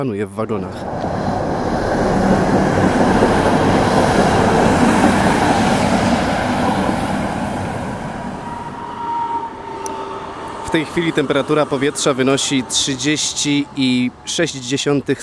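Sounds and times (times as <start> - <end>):
speech: 0.0 - 1.8, 10.7 - 15.2
tram rumbling and rattling on rails heard from inside the car: 0.6 - 13.7
faint high squeal of a tram: 8.4 - 12.1.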